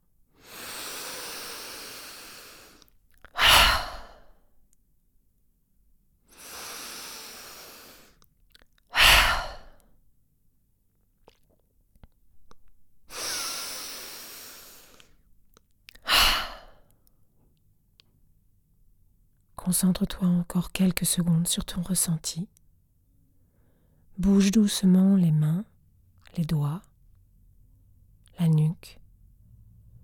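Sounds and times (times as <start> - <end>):
deep breaths in and out as a relaxation exercise: 0.3 - 4.5, 6.3 - 8.2, 8.9 - 10.0, 13.1 - 15.3, 16.0 - 17.3, 23.3 - 24.1
speech: 19.7 - 22.6, 24.2 - 25.7, 26.3 - 26.9, 28.4 - 29.0.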